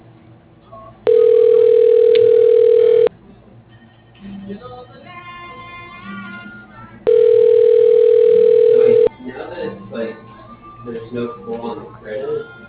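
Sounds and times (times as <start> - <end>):
telephone ringing tone on an outgoing call to a home repair business: 1.1 - 3.1, 7.1 - 9.1.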